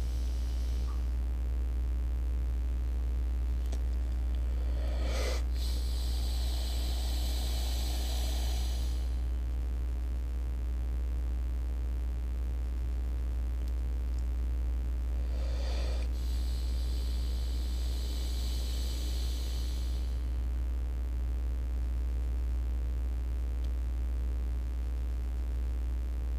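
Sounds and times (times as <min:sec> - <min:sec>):
forceful breathing during a guided breathing exercise: 0:00.0 - 0:01.2, 0:04.3 - 0:09.4, 0:15.2 - 0:20.5
steady low hum: 0:00.0 - 0:26.3.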